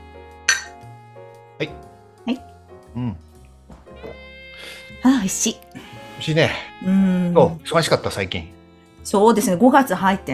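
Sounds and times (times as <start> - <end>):
glasses clinking in a toast: 0.5 - 0.8
speech: 1.6 - 3.3, 5.0 - 10.3.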